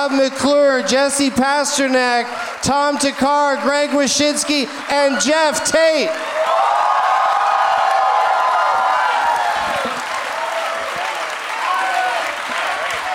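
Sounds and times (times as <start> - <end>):
speech: 0.0 - 6.8
large live audience applauding: 2.2 - 13.1
live audience cheering and whooping: 4.9 - 13.1.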